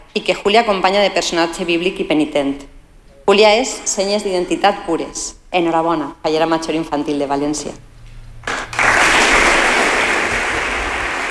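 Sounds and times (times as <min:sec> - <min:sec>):
speech: 0:00.2 - 0:02.7, 0:03.3 - 0:07.9
large crowd applauding: 0:08.4 - 0:11.2.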